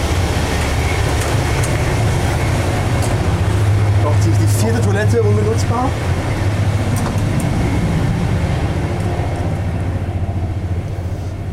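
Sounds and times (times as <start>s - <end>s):
deep droning hum inside a train carriage: 0.0s - 11.5s
moving train of old first-class carriages rumbling, heard from inside: 0.0s - 11.5s
speech: 5.0s - 6.1s.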